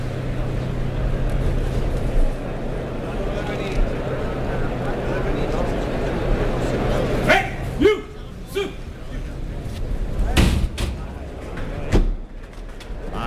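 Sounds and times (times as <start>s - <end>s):
steady crowd murmur in a bullring: 0.0s - 13.2s
scattered shouts: 7.2s - 8.9s
bull bursting through pen gate with sharp bangs and thuds: 10.3s - 11.2s.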